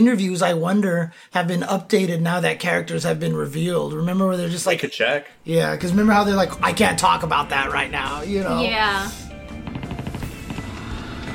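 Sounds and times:
speech: 0.0s - 9.2s
rapid gunfire in a multiplayer shooter video game: 9.3s - 11.3s.

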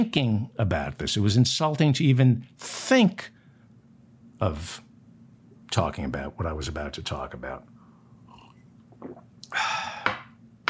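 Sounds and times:
speech: 0.0s - 3.4s, 4.4s - 4.8s, 5.7s - 7.7s, 9.0s - 9.8s
swallowing: 8.3s - 9.6s.

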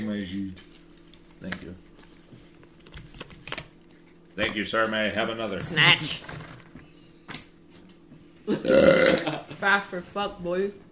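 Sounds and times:
speech: 0.0s - 0.8s, 1.4s - 2.4s, 4.4s - 6.5s, 8.5s - 10.9s
loud rough throaty burp: 8.5s - 9.4s.

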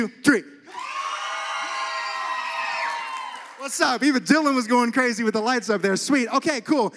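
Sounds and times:
speech: 0.0s - 0.9s, 3.6s - 6.9s
large audience cheering and hollering: 0.7s - 4.2s
audience applauding: 0.8s - 4.2s.

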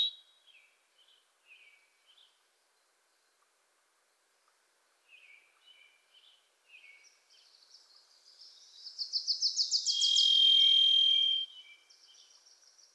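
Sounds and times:
Varied Thrush Ixoreus naevius buzzy ringing whistle: 9.6s - 11.5s.

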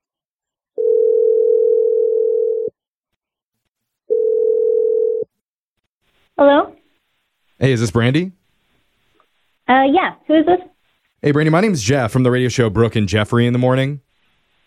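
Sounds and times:
telephone dial tone: 0.8s - 2.7s, 4.1s - 5.3s
speech: 7.6s - 8.4s, 9.7s - 14.1s.

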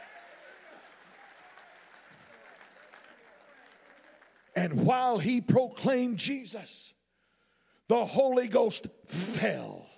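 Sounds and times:
audience clapping: 0.0s - 5.3s
speech: 4.6s - 7.0s, 7.9s - 9.8s.

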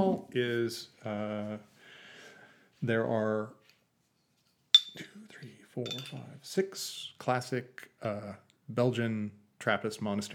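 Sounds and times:
speech: 0.2s - 1.7s, 2.8s - 3.6s, 5.0s - 10.3s
beer glasses clinking: 4.8s - 5.1s, 5.9s - 6.2s.

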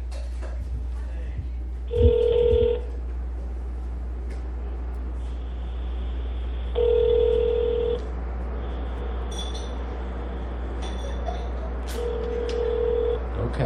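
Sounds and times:
low hum: 0.0s - 13.6s
telephone dialing tones: 1.9s - 2.9s, 6.8s - 8.0s, 12.0s - 13.2s
telephone ringback tone: 1.9s - 2.9s, 6.7s - 8.0s, 8.8s - 9.9s, 10.8s - 13.2s.

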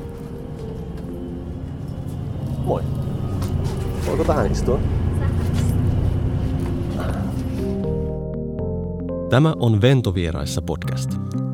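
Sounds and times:
passenger walking to the back of a bus: 0.0s - 2.6s, 5.3s - 7.8s
bus engine rumble inside a moving bus: 0.0s - 8.1s
speech: 2.7s - 3.0s, 4.2s - 5.0s, 9.3s - 11.5s.

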